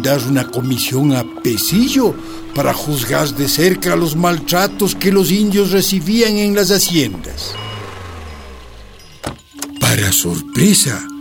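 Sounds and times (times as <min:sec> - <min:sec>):
speech: 0:00.0 - 0:07.7, 0:09.9 - 0:11.1
car engine rumbling as the vehicle pulls up: 0:01.7 - 0:09.5.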